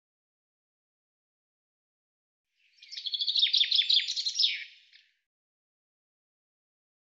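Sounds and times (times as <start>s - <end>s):
common chaffinch singing: 2.6s - 5.1s.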